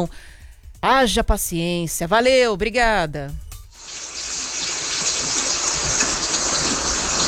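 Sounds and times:
speech: 0.0 - 3.4
heavy rain: 3.8 - 7.2.

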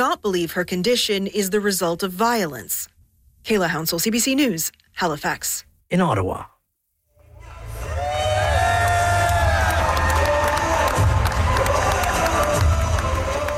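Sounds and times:
speech: 0.2 - 6.5
large crowd cheering at a World Cup trophy tour stop: 7.4 - 13.5.

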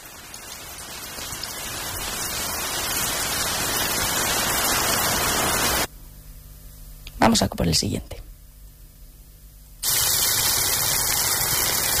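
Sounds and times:
dense rain hiss from frying croquettes as rain Foley: 0.0 - 5.9, 9.8 - 11.9
speech: 7.3 - 8.2.

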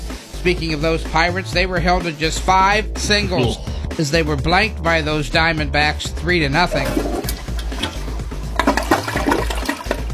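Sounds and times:
speech: 0.4 - 7.1
toilet flushing: 6.4 - 10.1.

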